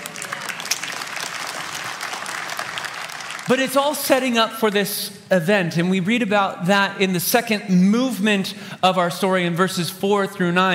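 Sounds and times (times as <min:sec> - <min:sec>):
crowd clapping: 0:00.0 - 0:04.8
speech: 0:03.5 - 0:10.7.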